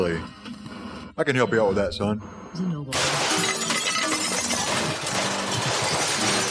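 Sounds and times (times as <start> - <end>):
speech: 0.0 - 0.4, 1.2 - 3.2
radio being smashed apart with shattering debris: 3.0 - 6.4.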